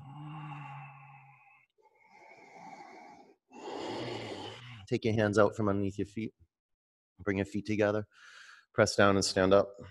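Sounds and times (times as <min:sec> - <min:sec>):
deep raspy breaths during yoga: 0:00.0 - 0:04.9, 0:08.1 - 0:08.7
speech: 0:04.9 - 0:06.4, 0:07.2 - 0:09.9.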